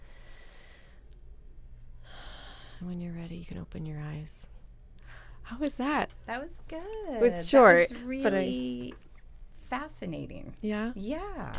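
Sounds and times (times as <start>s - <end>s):
deep full breath during a guided relaxation exercise: 0.0s - 1.1s, 2.0s - 2.9s, 5.0s - 5.5s
speech: 2.8s - 4.5s, 5.5s - 9.0s, 9.7s - 11.5s.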